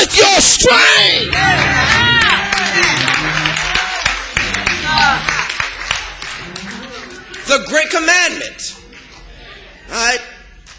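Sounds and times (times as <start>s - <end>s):
speech: 0.0s - 1.7s, 7.5s - 8.7s, 9.9s - 10.3s
cheering voices: 0.0s - 8.0s
crowd clapping hands: 1.2s - 9.3s.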